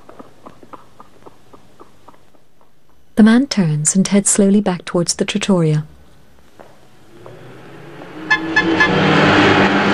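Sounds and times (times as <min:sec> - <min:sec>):
speech: 0:03.2 - 0:05.9
convertible car engine and road noise driving past: 0:07.0 - 0:09.9
car horn toots: 0:08.2 - 0:09.3.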